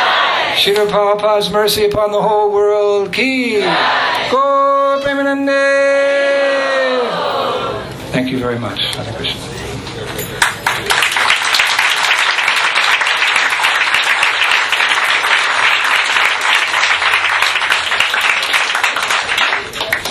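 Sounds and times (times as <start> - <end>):
speech: 0.6 - 9.6
large audience applauding a speaker: 10.4 - 20.0.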